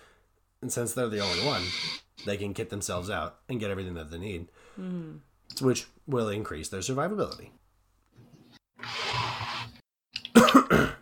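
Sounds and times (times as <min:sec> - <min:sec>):
speech: 0:00.6 - 0:07.6
long raspy exhale or throat-clearing: 0:10.4 - 0:11.0
sharp coughs: 0:10.4 - 0:11.0.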